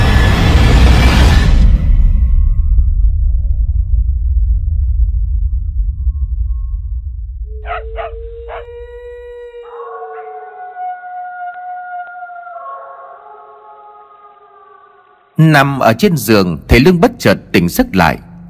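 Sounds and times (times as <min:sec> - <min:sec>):
low rumble: 0:00.0 - 0:08.9
dogs howling in a village at night: 0:07.5 - 0:15.4
speech: 0:15.4 - 0:18.3.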